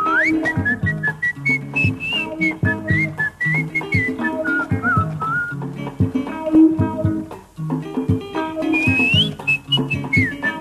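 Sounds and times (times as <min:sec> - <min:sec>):
bright whistled melody in a 1973 Congolese pop song: 0:00.0 - 0:05.6, 0:08.6 - 0:10.6
full band playing a bouncy groove with bass and guitars: 0:00.0 - 0:10.6.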